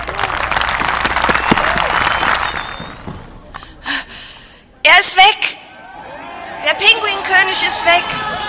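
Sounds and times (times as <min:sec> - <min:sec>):
crowd applauding: 0:00.0 - 0:03.2
speech: 0:05.1 - 0:05.6, 0:06.7 - 0:08.4.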